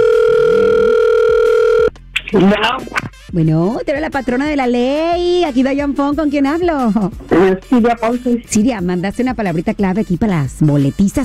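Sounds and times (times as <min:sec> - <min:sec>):
telephone ringback tone of an outgoing call: 0:00.0 - 0:01.9
speech: 0:02.3 - 0:11.2.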